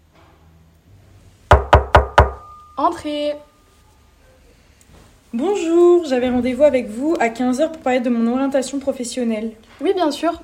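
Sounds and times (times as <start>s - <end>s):
girl knocking on an office door: 1.5s - 2.5s
speech: 2.8s - 3.5s, 5.3s - 10.4s.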